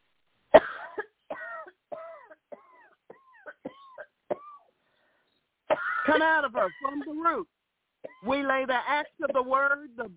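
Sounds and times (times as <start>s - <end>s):
woman coughing during a deliverance prayer: 0.6s - 4.7s, 5.7s - 7.4s, 8.0s - 8.4s, 9.2s - 9.6s
speech: 6.1s - 7.6s, 8.2s - 10.1s.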